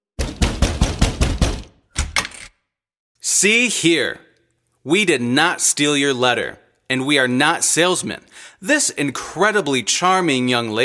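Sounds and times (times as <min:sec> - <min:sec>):
fist pounding heavily on a door: 0:00.2 - 0:01.8
speech: 0:03.2 - 0:04.2, 0:04.8 - 0:10.8.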